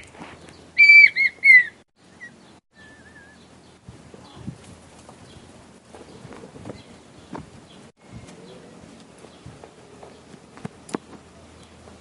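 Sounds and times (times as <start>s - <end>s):
male red-winged tinamou whistled song to the female: 0.8s - 3.4s.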